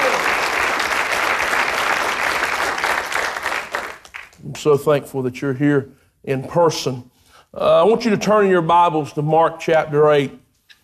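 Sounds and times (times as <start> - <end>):
church audience applauding at a morning service: 0.0 - 4.4
speech: 4.6 - 10.4.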